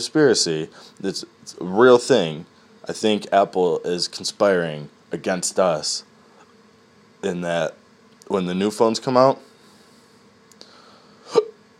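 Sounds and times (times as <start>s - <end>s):
speech: 0.0s - 6.1s, 7.2s - 9.5s
hiccup: 11.3s - 11.6s.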